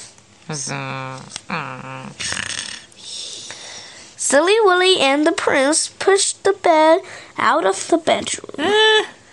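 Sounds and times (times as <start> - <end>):
speech: 0.5 - 2.7, 4.3 - 9.1
person imitating loud snoring: 0.6 - 3.1.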